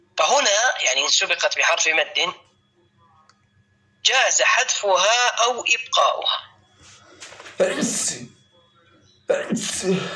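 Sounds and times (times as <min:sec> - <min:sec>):
speech: 0:00.3 - 0:02.5, 0:04.0 - 0:06.5, 0:07.6 - 0:08.4, 0:09.3 - 0:10.1
loud abrupt sneezes: 0:07.6 - 0:08.3.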